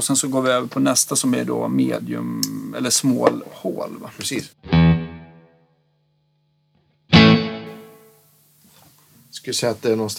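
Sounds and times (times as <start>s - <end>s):
speech: 0.0s - 4.9s, 9.5s - 10.1s
electric guitar note or chord played through an effects pedal: 4.6s - 5.7s, 7.1s - 8.2s.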